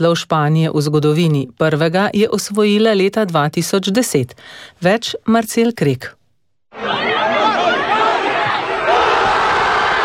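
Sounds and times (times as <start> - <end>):
speech: 0.0 - 6.2
large crowd of football fans cheering and shouting at a goal in a square: 6.7 - 10.0.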